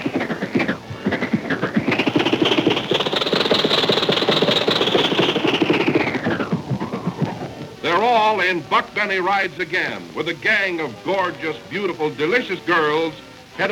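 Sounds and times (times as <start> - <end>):
old 1927 Maxwell car engine running: 0.0 - 8.3
speech: 8.1 - 13.7.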